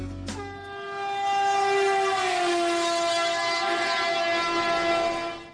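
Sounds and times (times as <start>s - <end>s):
train horn at a railway station: 0.3s - 5.5s.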